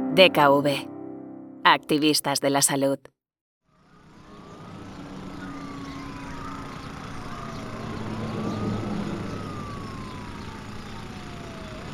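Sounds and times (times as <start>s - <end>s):
speech: 0.2s - 0.9s, 1.7s - 3.1s
emergency siren wailing: 3.7s - 11.9s
steady traffic rumble in a medium-sized Spanish city: 3.7s - 11.9s.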